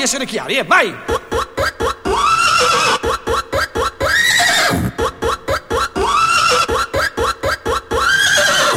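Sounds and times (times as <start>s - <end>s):
speech: 0.0s - 1.3s
horse neighing: 2.0s - 8.7s.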